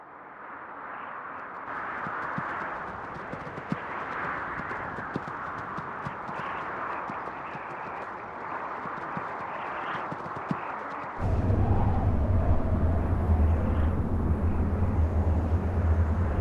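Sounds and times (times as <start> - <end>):
continuous outdoor rush of wind-like noise: 0.0 - 16.4
horse hooves clip-clopping at a walking pace on hard ground along a trail: 1.5 - 11.2.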